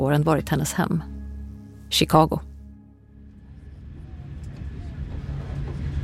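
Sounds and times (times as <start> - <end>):
speech: 0.0 - 1.1, 1.9 - 2.5
train rumbling along the rails: 3.3 - 6.0.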